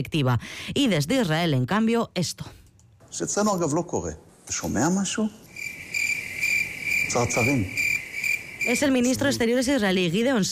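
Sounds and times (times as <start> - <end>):
speech: 0.0 - 5.4, 7.1 - 7.8, 8.6 - 10.5
steady high-pitched cricket chirping: 5.4 - 10.5.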